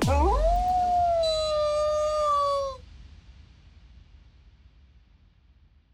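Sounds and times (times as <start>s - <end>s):
wolf howling: 0.2s - 2.8s.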